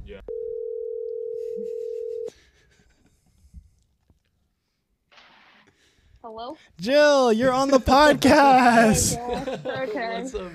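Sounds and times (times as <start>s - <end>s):
speech: 0.1s - 0.3s, 6.2s - 10.5s
telephone dial tone: 0.3s - 2.3s
laughter: 7.6s - 10.5s.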